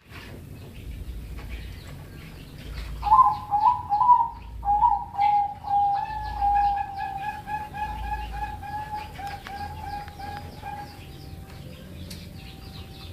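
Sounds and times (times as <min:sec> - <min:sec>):
pigeon cooing: 0:02.8 - 0:13.1.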